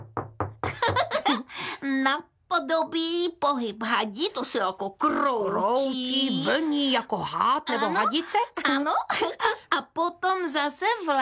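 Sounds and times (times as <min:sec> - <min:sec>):
hand knocking and tapping: 0:00.0 - 0:01.2
speech: 0:01.8 - 0:11.2.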